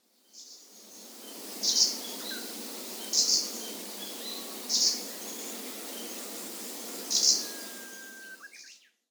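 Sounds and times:
Arctic warbler calling in Sakata: 1.7 - 8.7.

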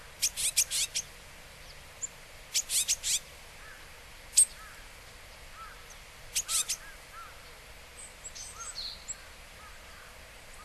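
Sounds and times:
constant hiss: 0.0 - 10.6
Japanese tit sharp calls in Hyogo Japan: 0.2 - 1.0, 2.5 - 3.2, 6.4 - 6.8.

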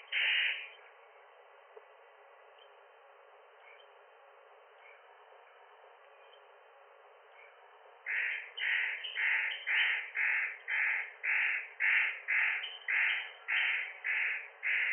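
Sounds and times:
spotted nutcracker giving harsh rasping crow-like calls: 0.1 - 0.8, 8.1 - 14.9.

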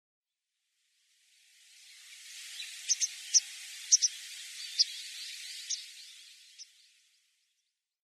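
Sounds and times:
soft hiss: 0.6 - 7.7
masked white wagtail sharp high chipping calls in Yonaguni, Japan: 2.5 - 6.7.

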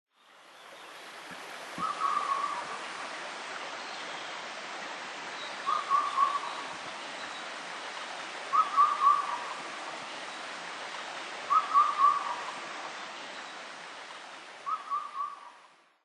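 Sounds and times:
Indian cuckoo calling in Tsushima: 5.7 - 6.6, 8.5 - 9.6, 11.5 - 12.4, 14.6 - 15.5.

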